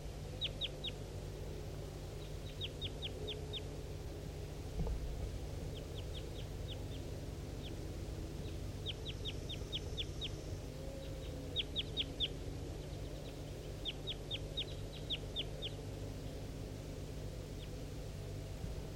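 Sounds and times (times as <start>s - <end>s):
wild bird calling with quick high chirps: 0.0s - 1.0s, 2.2s - 3.8s, 5.7s - 16.4s
steady low hum: 0.0s - 18.9s.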